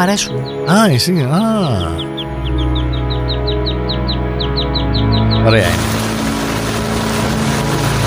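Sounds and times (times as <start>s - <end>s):
speech: 0.0s - 2.2s, 5.4s - 6.0s
birds chirping: 0.0s - 8.0s
steady sustained ambient music drone: 0.0s - 8.0s.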